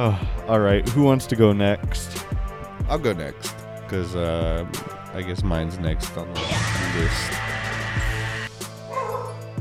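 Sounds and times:
speech: 0:00.0 - 0:02.3, 0:02.9 - 0:07.5
dog barking with sharp yelping barks: 0:08.9 - 0:09.5.

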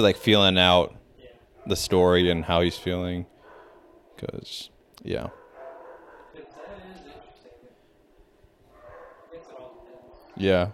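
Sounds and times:
speech: 0:00.0 - 0:01.0, 0:01.6 - 0:03.3, 0:04.2 - 0:05.4, 0:10.4 - 0:10.7
dogs barking and yipping: 0:01.5 - 0:04.2, 0:05.2 - 0:07.0, 0:08.7 - 0:10.6.

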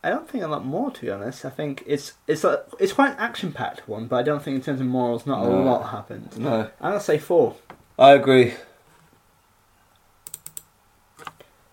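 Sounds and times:
speech: 0:00.0 - 0:08.7
low steady hiss: 0:00.0 - 0:11.7
typing on a computer keyboard: 0:10.3 - 0:11.4.

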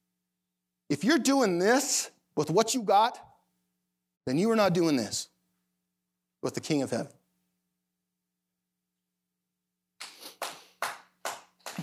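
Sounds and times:
speech: 0:00.9 - 0:03.3, 0:04.2 - 0:05.3, 0:06.4 - 0:07.2
loud booming hand claps: 0:10.0 - 0:11.8.

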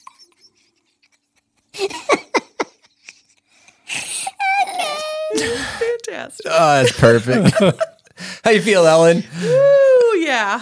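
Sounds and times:
woman crying with high-pitched wavering sobbing wails: 0:00.0 - 0:07.9, 0:09.3 - 0:10.6
woman hyperventilating with sharp breathy gasps: 0:03.5 - 0:06.1
speech: 0:05.4 - 0:10.6
laughter: 0:06.4 - 0:08.1.

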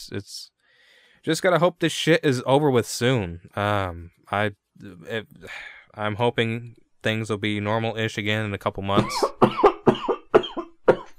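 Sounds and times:
speech: 0:00.0 - 0:00.6, 0:01.2 - 0:09.6
wet coughs: 0:09.0 - 0:11.1.

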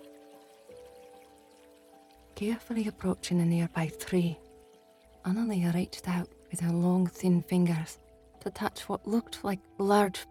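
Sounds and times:
trickling water of a forest stream: 0:00.0 - 0:10.2
speech: 0:02.4 - 0:04.4, 0:05.2 - 0:10.2.

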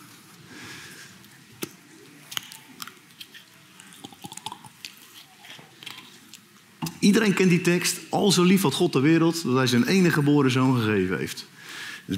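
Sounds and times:
wet mouth clicks: 0:01.6 - 0:06.0
person sipping water: 0:02.3 - 0:06.4
speech: 0:07.0 - 0:11.5
soft gasp: 0:11.6 - 0:12.1.

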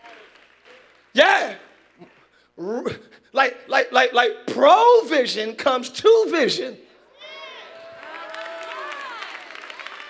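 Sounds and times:
scattered audience hand claps: 0:00.0 - 0:01.2, 0:08.0 - 0:10.0
speech: 0:02.6 - 0:06.8.

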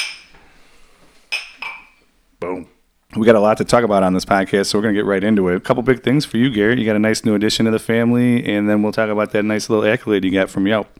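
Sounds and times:
glasses clinking together in a toast: 0:00.0 - 0:00.4, 0:01.3 - 0:02.0
speech: 0:02.6 - 0:10.9.

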